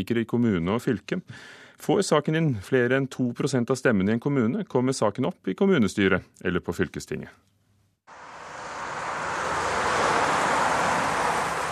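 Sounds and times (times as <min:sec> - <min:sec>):
speech: 0:00.0 - 0:07.6
heavy road traffic including heavy goods vehicles on county road fv 60 in Solvik: 0:08.1 - 0:11.7.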